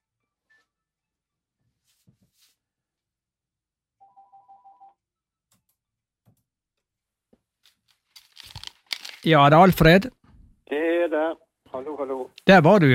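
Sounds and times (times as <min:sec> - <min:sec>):
telephone ringing in a short warbling burst: 0:04.0 - 0:05.0
speech: 0:09.2 - 0:10.2, 0:11.8 - 0:12.9.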